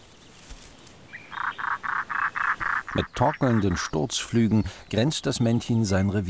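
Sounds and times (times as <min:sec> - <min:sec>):
European roller calling harshly on the Latvian coast in spring: 0:01.1 - 0:04.0
speech: 0:03.0 - 0:06.2.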